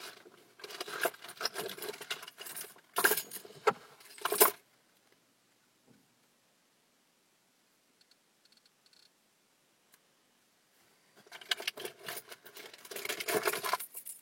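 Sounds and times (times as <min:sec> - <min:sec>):
bunch of keys jangling: 0:00.6 - 0:04.6, 0:11.3 - 0:14.2.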